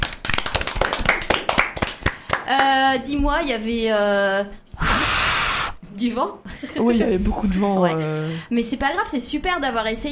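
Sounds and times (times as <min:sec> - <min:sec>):
hands clapping in applause: 0:00.0 - 0:02.8
speech: 0:02.5 - 0:05.2, 0:05.9 - 0:10.0.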